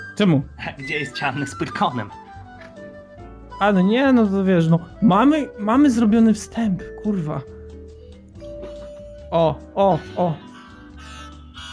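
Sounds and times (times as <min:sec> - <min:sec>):
speech: 0:00.2 - 0:02.2, 0:03.6 - 0:07.6, 0:09.3 - 0:10.5
mobile phone ringtone: 0:10.2 - 0:11.7.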